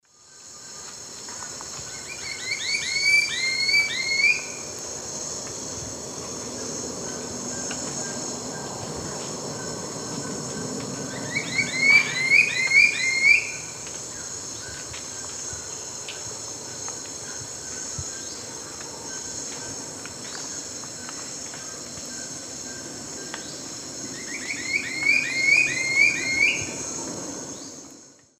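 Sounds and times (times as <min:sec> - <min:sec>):
Campylorhamphus trochilirostris singing in South American eastern lowlands: 0:01.8 - 0:04.7, 0:06.5 - 0:16.1, 0:21.7 - 0:27.9.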